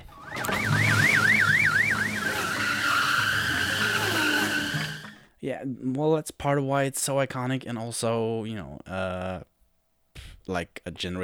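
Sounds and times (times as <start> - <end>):
car engine rumbling on street next to apartment: 0.0 - 5.2
rapid warbling electronic wail settling into high whine: 0.0 - 5.2
speech: 5.4 - 9.5, 10.4 - 11.2.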